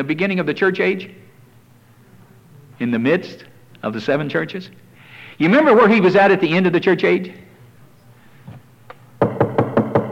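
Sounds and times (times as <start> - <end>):
speech: 0.0 - 1.3, 2.8 - 4.8, 5.4 - 7.4
firm knocks on wood like rapping at a door: 9.2 - 10.0.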